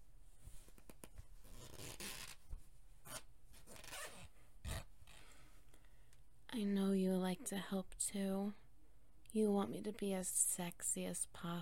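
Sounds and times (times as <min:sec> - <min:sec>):
dress zipper being zipped up: 0:01.4 - 0:02.4, 0:03.0 - 0:04.9
speech: 0:06.6 - 0:08.6, 0:09.3 - 0:11.5.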